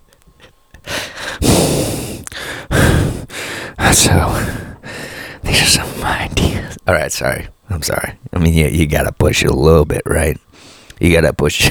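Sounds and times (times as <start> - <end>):
heavy breathing into a microphone: 0.4 - 7.6, 10.5 - 11.0
speech: 3.9 - 4.6, 5.5 - 10.4, 11.0 - 11.6.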